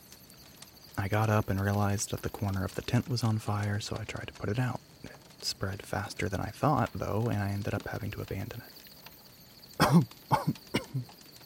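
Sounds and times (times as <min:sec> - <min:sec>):
speech: 0:01.0 - 0:08.9, 0:09.8 - 0:11.2
rough loud coughing: 0:09.8 - 0:11.0.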